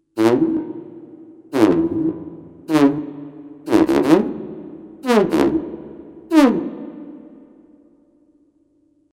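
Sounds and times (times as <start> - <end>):
tuba: 0.1 - 7.4
saxophone: 0.2 - 7.4.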